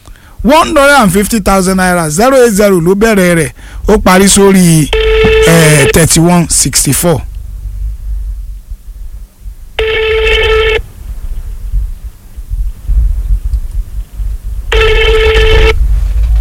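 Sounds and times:
speech: 0:00.4 - 0:07.3
telephone ringing on an unanswered call: 0:04.8 - 0:06.1, 0:09.8 - 0:10.8, 0:14.7 - 0:15.8
steady low rumble: 0:05.0 - 0:16.3.

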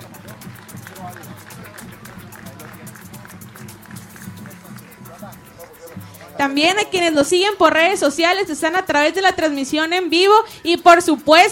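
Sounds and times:
crowd applauding: 0:00.0 - 0:07.8
voices murmuring and calling out: 0:00.0 - 0:11.4
speech: 0:06.4 - 0:11.4.

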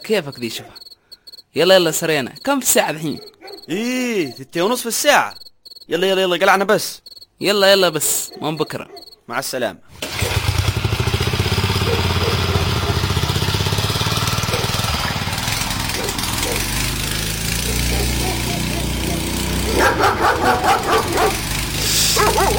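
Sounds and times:
speech: 0:00.1 - 0:00.8, 0:01.5 - 0:10.0
dogs barking: 0:01.8 - 0:04.7, 0:07.4 - 0:09.3, 0:11.7 - 0:13.2, 0:14.2 - 0:22.5
steady engine-like drone: 0:10.0 - 0:22.5.

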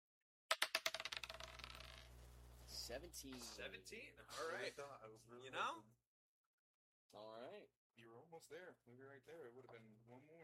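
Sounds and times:
dice clattering across a hard surface: 0:00.5 - 0:02.2
speech: 0:02.9 - 0:06.0, 0:07.1 - 0:10.4.

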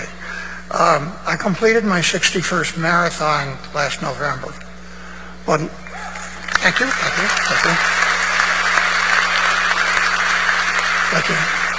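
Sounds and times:
speech: 0:00.7 - 0:04.6, 0:05.5 - 0:05.8, 0:06.6 - 0:08.0, 0:11.1 - 0:11.6
audience applause during an award acceptance speech: 0:05.9 - 0:11.7.

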